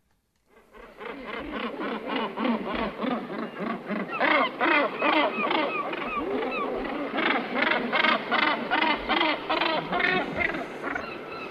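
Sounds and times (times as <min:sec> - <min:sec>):
large seabird giving harsh honking breeding season calls: 0:00.5 - 0:11.4.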